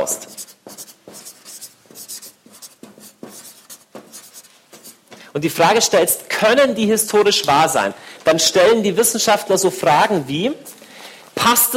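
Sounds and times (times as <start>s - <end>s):
speech: 0.0s - 0.4s, 5.3s - 10.7s, 11.4s - 11.7s
pen strokes handwriting a heading: 0.0s - 5.0s.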